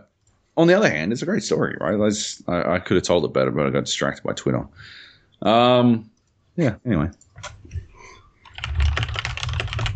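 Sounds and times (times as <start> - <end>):
faint sound: 0.0 - 9.9
speech: 0.6 - 7.8
computer keyboard typing: 7.1 - 9.9.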